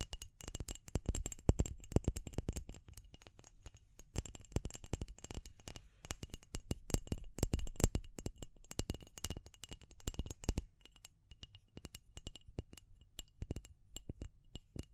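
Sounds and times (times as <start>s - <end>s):
rapid irregular tapping and scratching: 0.0s - 14.9s.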